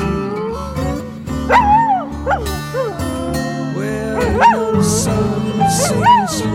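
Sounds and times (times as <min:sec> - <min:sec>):
dogs barking and yelping outside: 0:00.2 - 0:03.5, 0:04.1 - 0:06.5.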